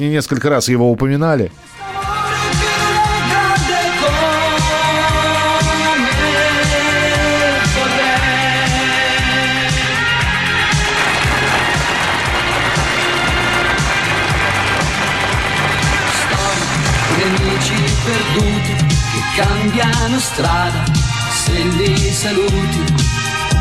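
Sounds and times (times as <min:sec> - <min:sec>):
speech: 0:00.0 - 0:01.9, 0:19.4 - 0:23.1
loud sung performance with instrumental backing: 0:01.6 - 0:23.5
steady dense rain hiss: 0:10.5 - 0:19.4.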